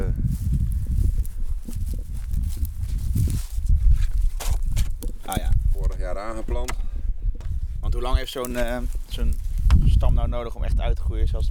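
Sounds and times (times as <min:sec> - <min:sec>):
footsteps crunching over rough ground in a vineyard: 0:00.0 - 0:10.3
speech: 0:08.1 - 0:11.4.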